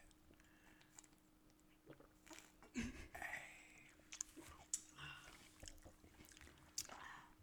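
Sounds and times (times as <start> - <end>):
biting and chewing juicy watermelon: 0.3 - 2.7, 4.0 - 7.3.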